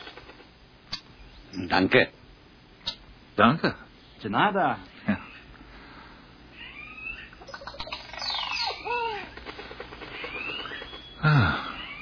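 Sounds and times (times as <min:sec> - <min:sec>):
soft outdoor hiss: 0:00.0 - 0:11.8
speech: 0:01.5 - 0:02.2, 0:03.4 - 0:05.2
bird calling with sweeping warbling whistles and chirps: 0:06.5 - 0:12.0.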